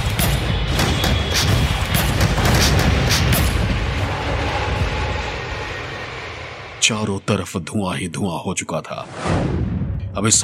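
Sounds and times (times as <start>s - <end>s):
missiles exploding in a war attack: 0.0s - 6.8s
speech: 6.9s - 10.4s.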